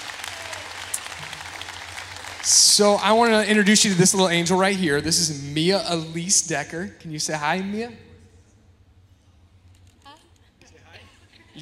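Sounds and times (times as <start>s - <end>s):
roomful of people clapping: 0.0s - 3.9s
speech: 2.4s - 8.1s.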